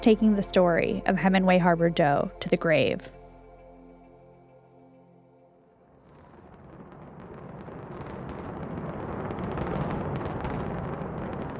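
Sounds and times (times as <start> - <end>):
speech: 0.0 - 3.2
fireworks crackling pops: 5.9 - 11.5
casino building demolition explosions: 6.0 - 11.5.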